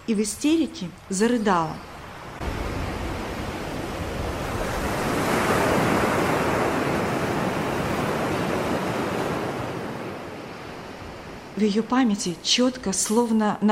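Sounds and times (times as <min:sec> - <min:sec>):
speech: 0:00.1 - 0:02.0, 0:11.6 - 0:13.7
massive tsunami waves crashing: 0:02.0 - 0:12.6.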